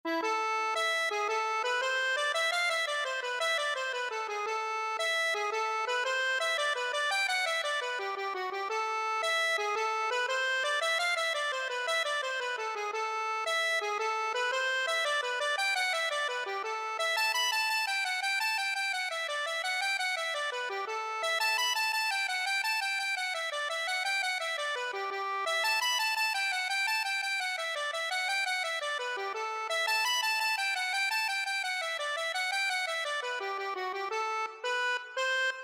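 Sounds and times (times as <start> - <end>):
accordion: 0.1 - 35.6.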